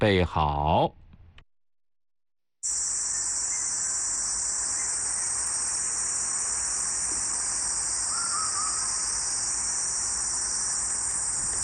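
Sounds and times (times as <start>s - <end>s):
speech: 0.0s - 1.0s
huigu cicada calling: 2.6s - 11.6s.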